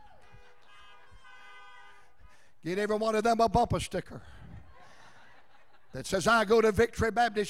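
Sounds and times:
car horns honking at a church gathering: 0:00.0 - 0:02.6
speech: 0:02.6 - 0:04.4, 0:05.9 - 0:07.4
laughter: 0:04.5 - 0:06.5.

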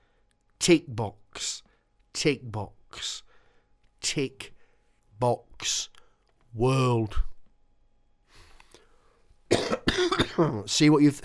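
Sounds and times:
speech: 0:00.6 - 0:03.3, 0:04.0 - 0:04.6, 0:05.2 - 0:07.3, 0:09.6 - 0:11.2
person coughing: 0:09.5 - 0:10.7.

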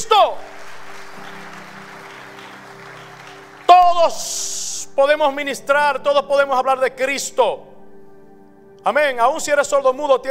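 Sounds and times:
speech: 0:00.1 - 0:00.5, 0:04.1 - 0:07.7, 0:08.8 - 0:10.2
audience applauding: 0:00.2 - 0:04.5.

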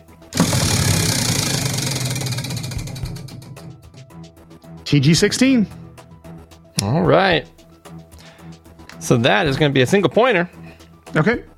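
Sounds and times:
prize wheel being spun: 0:00.3 - 0:04.0
speech: 0:04.9 - 0:05.8, 0:06.8 - 0:07.6, 0:09.1 - 0:11.5.

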